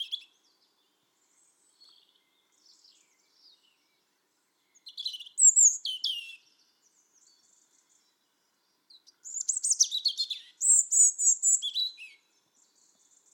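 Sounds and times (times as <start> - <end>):
European robin Erithacus rubecula singing: 0.0 - 13.3.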